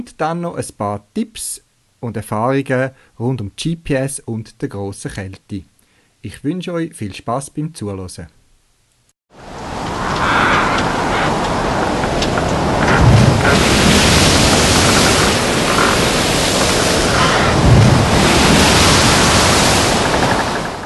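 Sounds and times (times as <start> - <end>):
speech: 0.0 - 8.4
strong wind whipping around a small island: 9.4 - 20.8
surf-like wash: 9.4 - 20.8.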